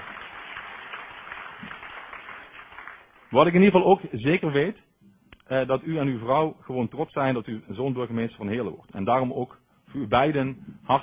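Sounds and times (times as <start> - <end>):
room full of people applauding: 0.0 - 3.5
speech: 3.3 - 4.9, 5.5 - 11.0.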